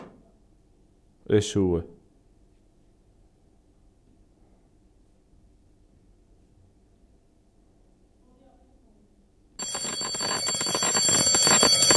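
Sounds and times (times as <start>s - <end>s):
speech: 1.3s - 2.0s
loud electric bell ringing: 9.6s - 11.9s.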